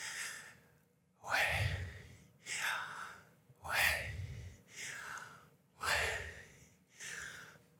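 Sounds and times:
deep breathing in and out: 0.0s - 7.7s.

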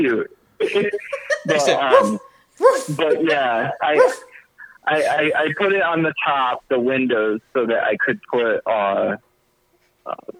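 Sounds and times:
speech: 0.0s - 9.3s, 10.1s - 10.3s
laughter: 0.6s - 5.8s
dog barking: 1.8s - 3.1s, 3.9s - 4.4s.

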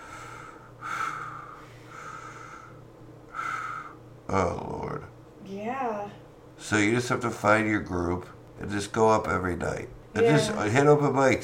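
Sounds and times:
heavy labored breathing while catching breath: 0.0s - 4.0s
speech: 4.3s - 4.8s, 5.5s - 11.4s.

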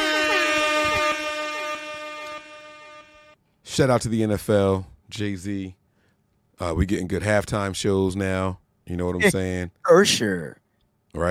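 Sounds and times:
brassy air horn sound effect blasts: 0.0s - 3.4s
speech: 3.8s - 5.8s, 6.6s - 11.2s.

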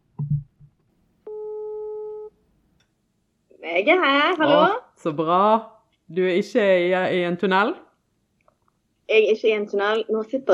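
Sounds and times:
telephone ringback tone: 1.3s - 2.3s
speech: 3.7s - 7.8s, 9.1s - 10.5s.

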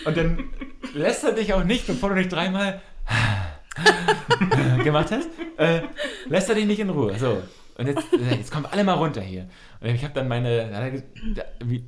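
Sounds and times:
laughter: 0.0s - 1.0s, 3.7s - 9.1s
speech: 0.0s - 11.8s
person breathing deeply in and out: 2.8s - 4.8s, 9.5s - 9.8s.

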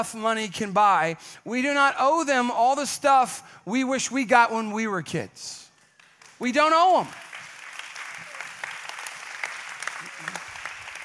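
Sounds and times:
speech: 0.0s - 5.6s, 6.4s - 7.2s
congregation clapping: 5.7s - 11.0s.

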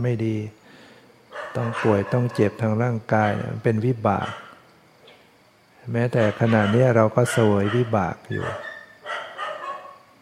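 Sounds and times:
speech: 0.0s - 0.6s, 1.5s - 4.4s, 5.8s - 8.7s
quiet hum: 0.0s - 10.1s
dog barking: 1.3s - 2.6s, 3.2s - 3.6s, 4.2s - 4.6s, 6.1s - 10.1s.

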